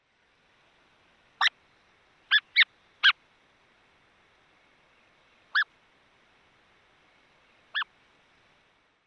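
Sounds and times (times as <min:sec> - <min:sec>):
Buff-breasted Sandpiper Calidris subruficollis calling: 0:01.4 - 0:01.6, 0:02.3 - 0:03.2, 0:05.5 - 0:05.7, 0:07.7 - 0:08.0.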